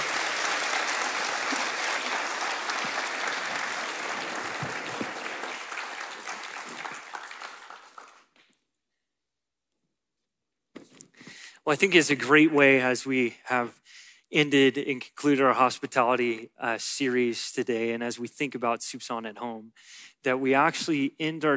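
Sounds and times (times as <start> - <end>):
room full of people clapping: 0.0 - 8.3
speech: 11.7 - 21.5.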